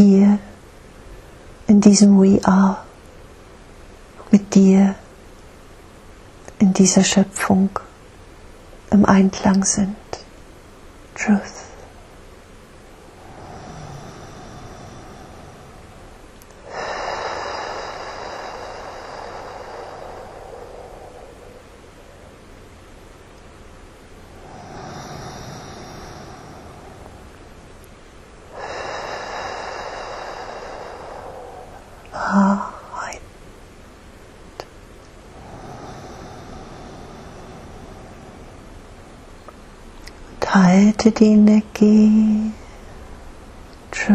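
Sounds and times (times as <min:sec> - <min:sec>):
speech: 0:01.7 - 0:02.8, 0:04.3 - 0:05.0, 0:06.6 - 0:07.8, 0:08.9 - 0:10.0, 0:11.2 - 0:11.6, 0:41.0 - 0:42.5
slow breathing during a guided breathing meditation: 0:10.7 - 0:40.3, 0:42.5 - 0:44.0.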